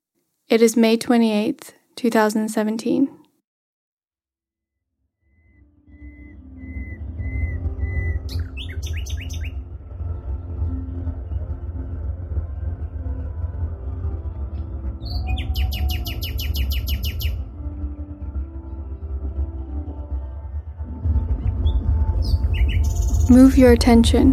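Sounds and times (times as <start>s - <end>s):
speech: 0.5s - 3.2s, 23.4s - 24.3s
low sustained music: 5.3s - 24.3s
nightingale singing just after sunset on a late-May evening: 5.4s - 9.6s, 15.0s - 17.4s, 21.5s - 23.6s.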